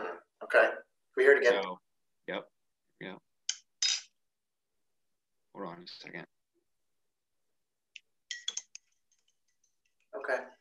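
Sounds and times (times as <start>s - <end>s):
speech: 0.5s - 3.3s, 5.6s - 6.4s, 10.3s - 10.5s
spoon stirring coffee in a cup: 8.3s - 10.1s.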